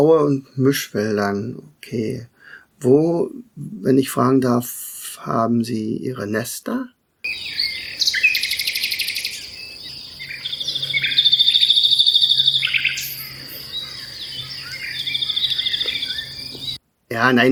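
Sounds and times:
speech: 0.0 - 7.7, 17.1 - 17.5
nightingale singing: 7.2 - 17.5.

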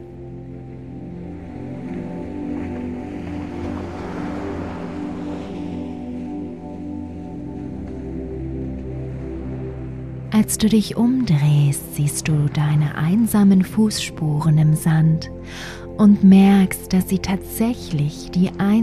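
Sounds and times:
gentle sea waves lapping over bare feet at the water's edge: 0.1 - 13.3
speech: 10.4 - 18.8.

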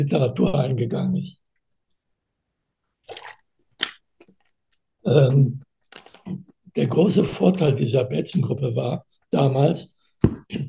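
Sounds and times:
speech: 0.0 - 1.4, 5.0 - 5.6, 6.3 - 10.6
swallowing gulp: 3.0 - 4.5
wet mouth sounds while sipping a drink: 3.0 - 4.5.

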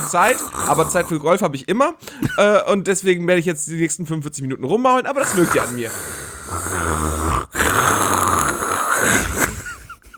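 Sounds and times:
heavy rasping respirator-like breathing: 0.0 - 1.3, 5.2 - 10.1
person imitating loud snoring: 0.0 - 1.3, 5.2 - 10.1
speech: 0.1 - 7.3.

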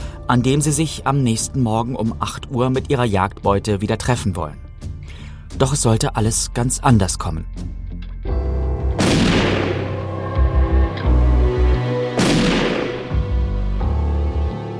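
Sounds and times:
speech: 0.3 - 4.6, 5.5 - 7.8
low steady droning background: 8.3 - 14.7
gunshots with a long tail: 9.0 - 10.0, 12.2 - 13.2.

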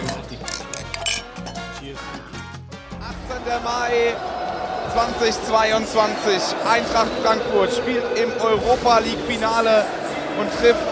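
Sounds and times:
glasses clinking together in a toast: 0.0 - 1.8
speech: 3.4 - 4.4, 5.0 - 10.8.

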